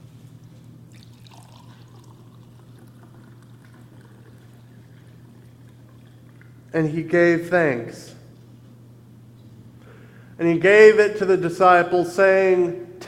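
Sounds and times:
faint low hum: 0.0s - 13.0s
liquid pouring into a cup: 0.9s - 6.7s
speech: 6.7s - 8.1s, 10.4s - 13.0s.

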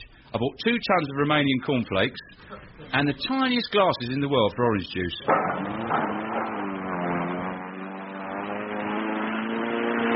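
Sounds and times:
speech: 0.3s - 6.2s
model aeroplane engine buzzing in a tower block flat: 5.4s - 10.1s.

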